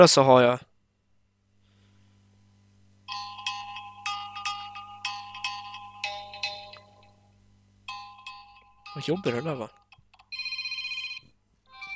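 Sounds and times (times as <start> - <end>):
speech: 0.0 - 0.7, 9.0 - 9.8
phone alarm ringtone: 3.1 - 7.1, 7.9 - 11.9.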